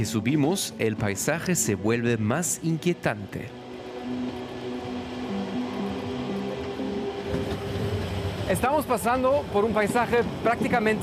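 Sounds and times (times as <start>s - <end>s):
speech: 0.0s - 4.4s, 8.5s - 11.0s
train rolling along the track climbing through mountain forest: 0.0s - 11.0s.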